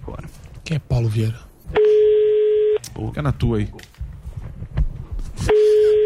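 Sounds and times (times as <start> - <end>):
speech: 0.7 - 1.4, 3.0 - 3.9
telephone ringback tone of an outgoing call: 1.8 - 2.8, 5.5 - 6.0.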